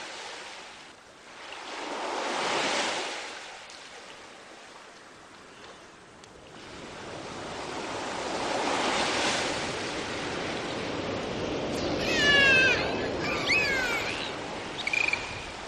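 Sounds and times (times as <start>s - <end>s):
ocean waves breaking on a shore: 0.0s - 15.6s
dolphins squeaking and whistling: 12.2s - 15.5s.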